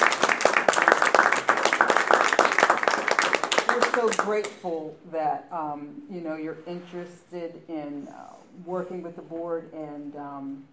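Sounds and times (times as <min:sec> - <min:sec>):
audience applauding: 0:00.0 - 0:04.6
speech: 0:04.0 - 0:10.7.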